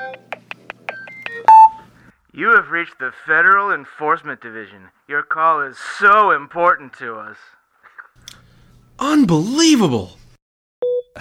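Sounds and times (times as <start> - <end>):
telephone keypad dialing tones: 0.9 - 1.8
speech: 2.4 - 7.6, 9.0 - 10.2.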